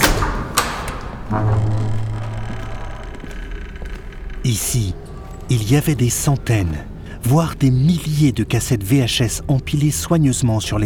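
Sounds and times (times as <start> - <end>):
door latch click: 0.0 - 1.4
door creaking open: 0.0 - 7.3
speech: 1.3 - 2.0, 4.5 - 10.8.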